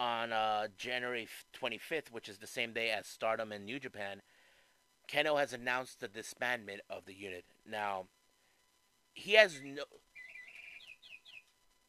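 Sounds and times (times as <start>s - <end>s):
speech: 0.3s - 4.3s, 5.1s - 8.2s, 9.2s - 10.1s
mechanical toy bird chirping: 10.2s - 11.5s.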